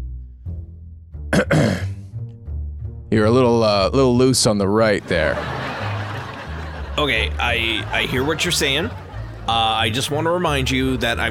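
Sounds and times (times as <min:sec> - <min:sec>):
speech: 0:01.4 - 0:01.9, 0:03.1 - 0:05.7, 0:07.0 - 0:11.3
throat clearing: 0:01.4 - 0:02.0
laughter: 0:05.0 - 0:11.3.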